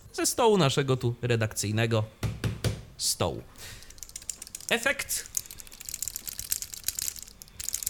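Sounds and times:
speech: 0.2s - 2.3s, 3.0s - 3.8s, 4.7s - 5.3s
small loose parts rattling inside shaken bone-conduction headphones that fell off a table: 3.7s - 7.8s.

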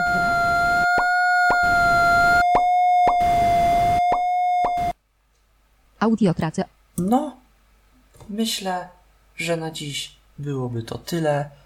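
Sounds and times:
graphing calculator audio graph sonification tone: 0.0s - 5.0s
speech: 6.0s - 7.4s, 8.2s - 11.6s.

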